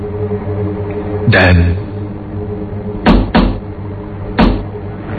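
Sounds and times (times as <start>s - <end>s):
speech: 0.3s - 1.8s
hollow knocking on the back of a car body: 3.1s - 3.6s, 4.4s - 4.6s.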